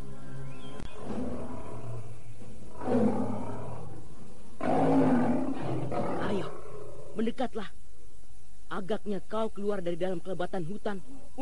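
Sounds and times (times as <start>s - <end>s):
large striped tiger roaring: 0.0s - 7.0s
speech: 7.3s - 7.8s, 8.8s - 11.4s.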